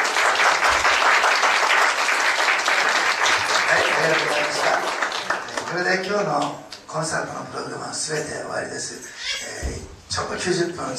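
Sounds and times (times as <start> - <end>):
audience applause at a church concert: 0.0 - 6.4
speech: 5.7 - 10.9.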